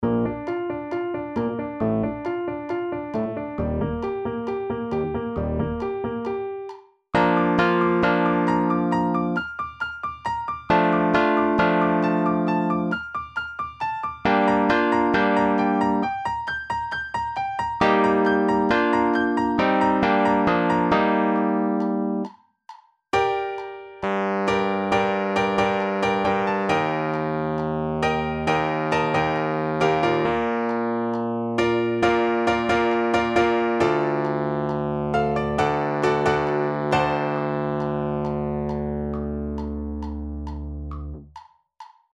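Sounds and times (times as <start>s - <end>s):
synth piano etude: 0.0s - 22.3s, 23.2s - 41.2s.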